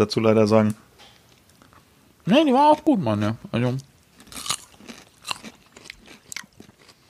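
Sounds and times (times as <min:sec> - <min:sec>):
speech: 0:00.0 - 0:00.8, 0:02.3 - 0:03.9
crunchy bites of sausage: 0:04.2 - 0:07.0
person chewing and smacking while eating sausages: 0:04.2 - 0:07.0.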